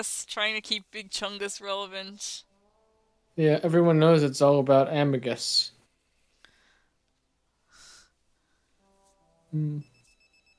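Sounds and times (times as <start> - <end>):
speech: 0.0 - 2.5, 3.4 - 5.8, 9.5 - 9.9
faint high beeps: 9.5 - 10.5
electronic pager tone: 9.6 - 10.5.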